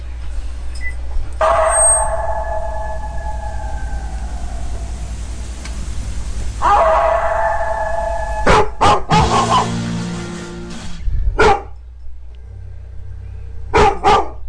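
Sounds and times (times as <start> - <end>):
low hum: 0.0 - 14.4
dog barking sharply and loudly: 1.4 - 3.4, 6.6 - 9.7, 11.4 - 11.8, 13.7 - 14.4.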